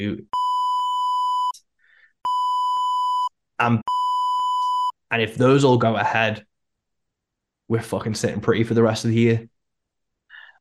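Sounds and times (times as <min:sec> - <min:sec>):
speech: 0:00.0 - 0:00.4, 0:03.6 - 0:04.0, 0:05.1 - 0:06.5, 0:07.7 - 0:09.5
censor bleeps covering speech: 0:00.3 - 0:01.6, 0:02.3 - 0:05.0.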